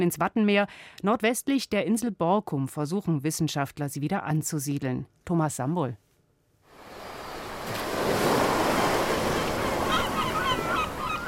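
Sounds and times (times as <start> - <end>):
speech: 0.0 - 6.0
sea waves on the open sea at a nature reserve: 6.7 - 11.2
birds calling over the surf: 8.3 - 11.2.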